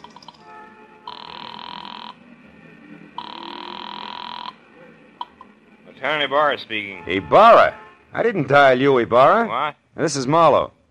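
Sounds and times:
telephone ringback tone through an earpiece: 1.1 - 2.2, 3.2 - 4.6
speech: 6.0 - 10.8.

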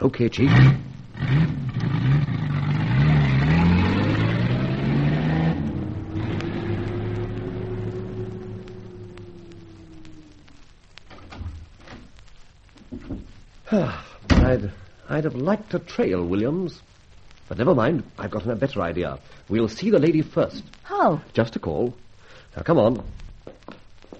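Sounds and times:
speech: 0.0 - 1.6, 15.2 - 16.9, 17.5 - 22.0, 22.6 - 23.2
car engine revving and pulling away: 0.4 - 10.7.

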